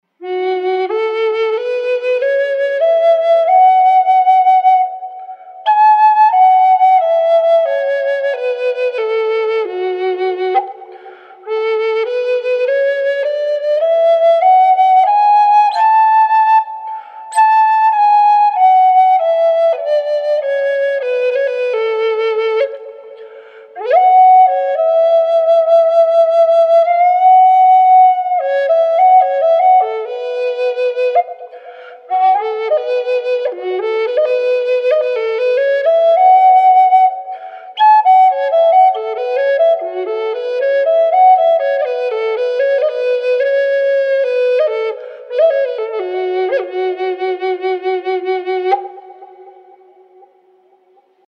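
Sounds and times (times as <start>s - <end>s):
wet spalted maple flute in F-sharp: 0.0s - 51.2s.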